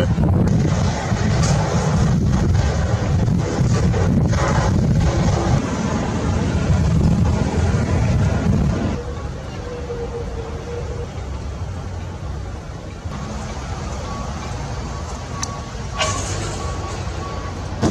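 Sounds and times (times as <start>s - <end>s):
heavy lorry loaded with dinghies rumbling as it leaves: 0.0s - 17.8s
lorry air brakes hissing: 15.9s - 17.5s.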